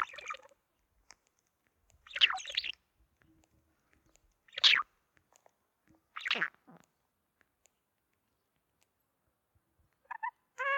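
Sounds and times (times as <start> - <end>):
budgerigar chirps: 0.0 - 0.5, 2.1 - 2.8, 4.5 - 4.8, 6.2 - 6.6, 10.1 - 10.7.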